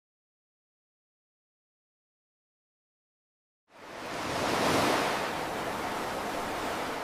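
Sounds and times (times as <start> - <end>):
ocean waves crashing on shore: 3.7 - 7.0.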